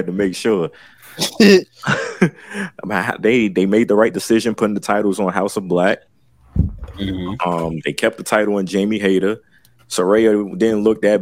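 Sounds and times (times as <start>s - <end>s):
speech: 0.0s - 11.2s
person coughing: 1.2s - 2.3s.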